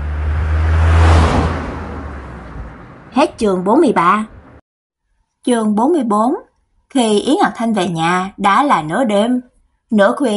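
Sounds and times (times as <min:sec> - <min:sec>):
car accelerating and driving off: 0:00.0 - 0:03.1
speech: 0:03.2 - 0:04.4, 0:05.4 - 0:10.3.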